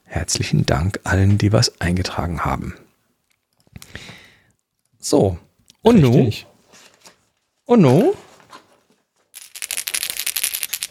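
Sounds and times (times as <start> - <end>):
speech: 0.2 - 2.8, 5.0 - 6.5, 7.7 - 8.2
dice rattling in a cup: 9.3 - 10.9.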